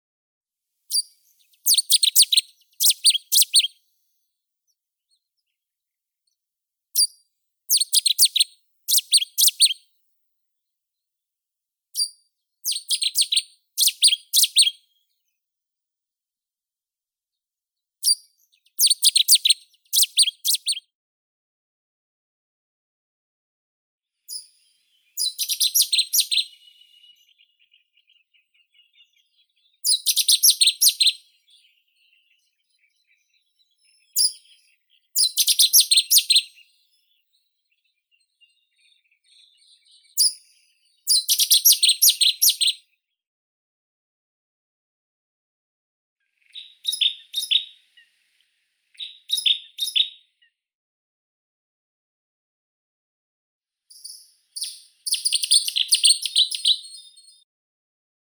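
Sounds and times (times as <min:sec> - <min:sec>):
Cetti's warbler Cettia cetti: 0:00.9 - 0:03.8, 0:07.0 - 0:09.8, 0:12.0 - 0:14.8, 0:18.0 - 0:20.8, 0:24.3 - 0:37.1, 0:37.8 - 0:42.8, 0:46.4 - 0:50.2, 0:53.9 - 0:57.3.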